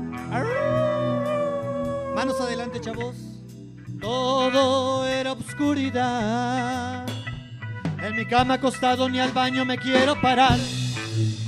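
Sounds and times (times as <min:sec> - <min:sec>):
person imitating a long wavering howl: 0:00.3 - 0:03.2
speech: 0:02.2 - 0:03.4, 0:04.0 - 0:07.2, 0:08.0 - 0:11.4.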